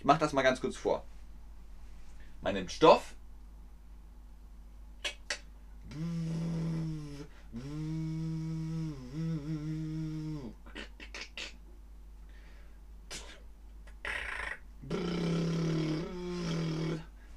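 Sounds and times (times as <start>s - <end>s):
speech: 0.0s - 1.2s, 2.4s - 3.2s
voice imitating a sewing machine with a buzzing hum: 5.0s - 11.6s, 14.0s - 17.1s
breathy noises: 5.8s - 11.6s, 12.3s - 17.3s.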